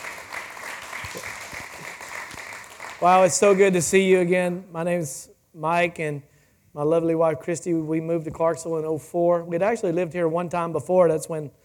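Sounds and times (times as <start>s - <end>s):
audience applause at a morning gathering: 0.0s - 3.6s
speech: 3.0s - 11.6s.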